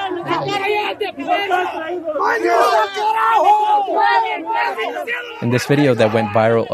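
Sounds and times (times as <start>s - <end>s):
crowd of protesters screaming and shouting angrily: 0.0s - 6.7s
speech: 0.4s - 6.7s.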